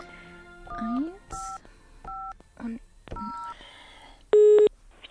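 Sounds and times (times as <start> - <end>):
telephone touch-tone dialing beeps: 0.7 - 2.3, 3.2 - 3.6, 4.3 - 4.7.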